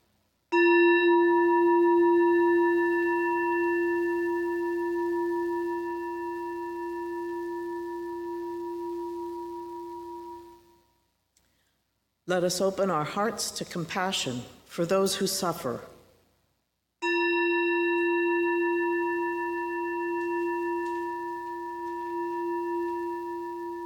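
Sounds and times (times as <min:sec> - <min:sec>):
meditation chime ringing: 0:00.5 - 0:11.1, 0:17.0 - 0:23.8
speech: 0:12.3 - 0:15.9.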